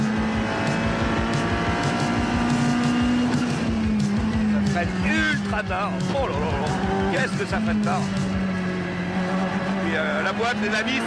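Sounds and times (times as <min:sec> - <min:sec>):
car engine at speed at high revs while overtaking another car: 0:00.0 - 0:11.0
speech: 0:04.8 - 0:08.3, 0:10.0 - 0:11.0.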